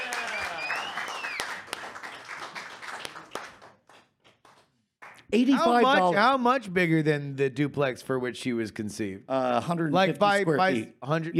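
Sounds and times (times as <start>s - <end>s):
whoop or whistle: 0.0s - 1.5s
crowd applause: 0.0s - 6.0s
speech: 5.3s - 11.3s.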